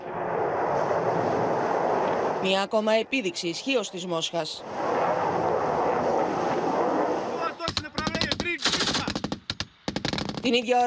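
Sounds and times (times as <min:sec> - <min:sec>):
hypersonic cruise missile rocket thrust roar at sea: 0:00.0 - 0:03.1, 0:04.5 - 0:09.2
speech: 0:02.4 - 0:04.9, 0:10.5 - 0:10.8.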